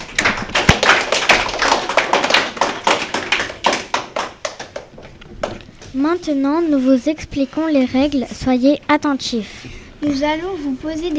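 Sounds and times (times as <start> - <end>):
group clapping for pupils: 0.0 - 5.9
speech: 6.0 - 11.1.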